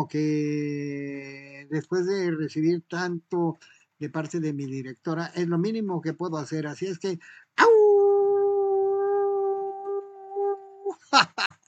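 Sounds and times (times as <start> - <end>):
speech: 0.0 - 8.0, 11.1 - 11.5
person imitating a howl: 7.6 - 11.0.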